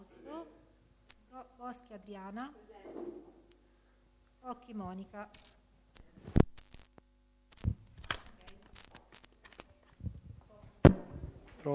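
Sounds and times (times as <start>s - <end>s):
low electric fan hum through a microphone: 0.0s - 11.7s
speech: 1.6s - 3.4s, 4.4s - 5.6s
microphone handling thumps and clicks: 6.2s - 7.0s, 7.6s - 8.1s, 10.0s - 11.6s.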